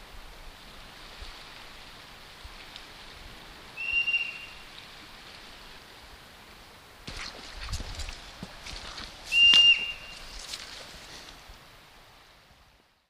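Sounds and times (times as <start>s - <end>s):
hoary marmot calling: 3.8s - 4.6s, 9.3s - 10.3s.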